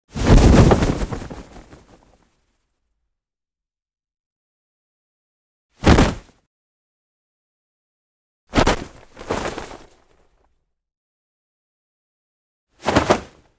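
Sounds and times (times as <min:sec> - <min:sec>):
parachute jump: 0:00.1 - 0:02.1, 0:05.8 - 0:06.4, 0:08.5 - 0:10.2, 0:12.8 - 0:13.5.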